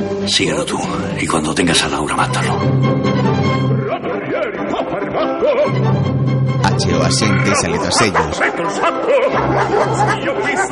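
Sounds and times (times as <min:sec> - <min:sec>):
speech: 0:00.2 - 0:03.8, 0:04.5 - 0:10.7
laughter: 0:04.0 - 0:05.8, 0:06.7 - 0:10.7
chattering background: 0:06.8 - 0:10.7
guards' attack dogs barking angrily outside a house: 0:07.4 - 0:10.7.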